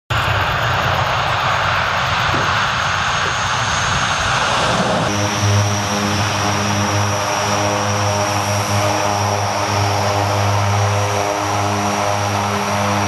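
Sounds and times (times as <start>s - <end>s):
Lockheed C-130 Hercules turboprop aircraft engines: 0.1s - 13.0s.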